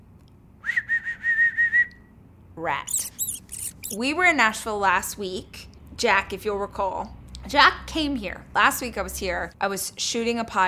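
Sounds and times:
person whistling short bright notes: 0.6 - 2.0
speech: 2.6 - 3.1, 3.9 - 10.6.

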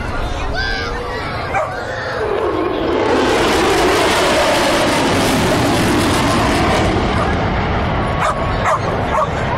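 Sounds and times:
F-35 jet roaring overhead at an air display in North Queensland: 0.0 - 9.5
dog barking and yipping excitedly: 1.5 - 1.8, 8.2 - 9.4.

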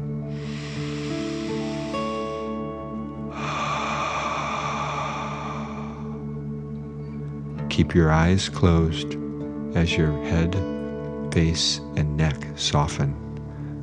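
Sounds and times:
soft sustained music: 0.0 - 13.8
slow deep breath in and out: 0.2 - 7.2, 13.4 - 13.8
speech: 7.8 - 10.7, 11.3 - 13.2.

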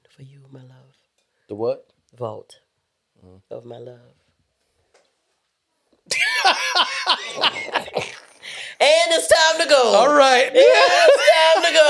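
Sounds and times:
speech: 0.2 - 2.6, 3.2 - 4.2, 6.1 - 11.8
laughter: 6.1 - 8.2, 10.4 - 11.8
raspy coughing: 6.2 - 8.8.

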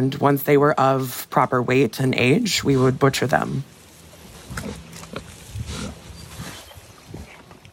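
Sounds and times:
speech: 0.0 - 3.8
six pigs grunting and snuffling on family farmland in southern Minnesota: 2.2 - 7.7.

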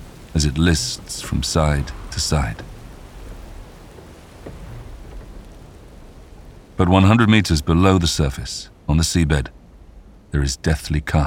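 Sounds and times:
heavy rain in a storm at sea: 0.0 - 11.2
low rumbling wind at sea: 0.0 - 11.2
surging sea water: 0.0 - 11.2
speech: 0.4 - 2.7, 6.8 - 9.6, 10.3 - 11.2.

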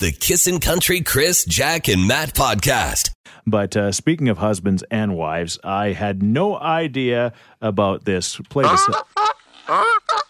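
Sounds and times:
speech: 0.0 - 10.0
goose honking: 8.6 - 10.2.

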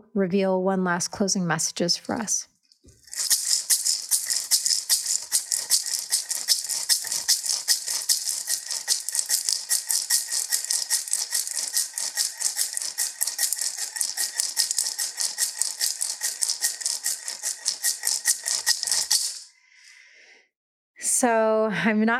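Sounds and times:
speech: 0.2 - 2.5, 3.2 - 3.4, 21.9 - 22.1
handheld dolphin rattle being shaken: 2.9 - 19.5.

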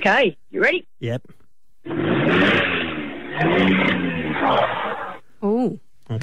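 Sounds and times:
speech: 0.0 - 2.6, 3.4 - 6.2
car engine revving: 1.8 - 5.2.

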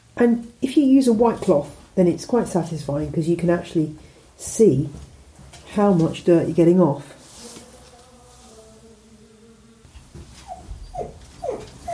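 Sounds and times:
speech: 0.2 - 5.1, 5.7 - 7.2
low steady humming in a room: 7.2 - 11.8
dog whining: 10.4 - 11.9.

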